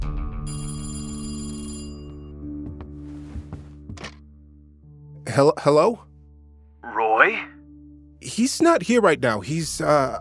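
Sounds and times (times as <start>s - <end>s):
telephone bell ringing with metallic tone: 0.5s - 2.3s
speech: 5.4s - 6.1s, 8.4s - 10.2s.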